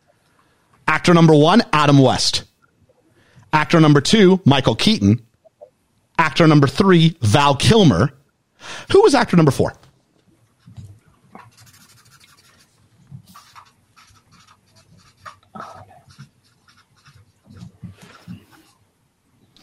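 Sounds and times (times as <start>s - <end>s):
speech: 1.0s - 2.5s, 3.5s - 5.2s, 6.2s - 9.8s
pen scratching on paper writing scores: 11.4s - 18.8s.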